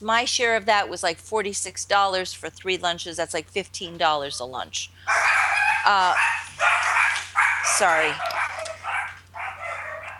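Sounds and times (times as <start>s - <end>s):
speech: 0.0s - 8.3s
steady low electrical hum: 0.0s - 10.1s
small dogs barking and yipping: 4.2s - 10.1s.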